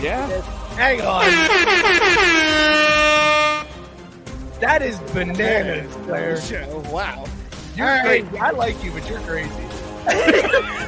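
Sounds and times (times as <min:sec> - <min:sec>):
speech: 0:00.0 - 0:02.8, 0:04.6 - 0:10.8
air horn blast: 0:01.2 - 0:03.9
laughter: 0:10.0 - 0:10.8.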